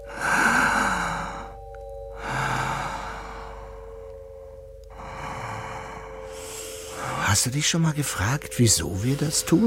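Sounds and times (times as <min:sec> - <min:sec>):
person breathing in and out: 0:00.0 - 0:07.2
steady low hum: 0:00.0 - 0:09.6
speech: 0:07.4 - 0:09.6.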